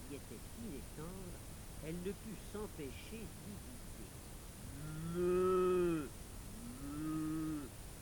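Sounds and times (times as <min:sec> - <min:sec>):
speech: 0:00.1 - 0:04.2, 0:04.8 - 0:06.2
cow mooing: 0:04.7 - 0:07.7.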